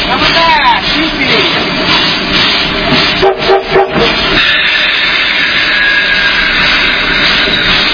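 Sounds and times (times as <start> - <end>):
train rumbling roar: 0.0 - 7.9
train whistle blasts signalling the train going backwards: 3.2 - 6.5.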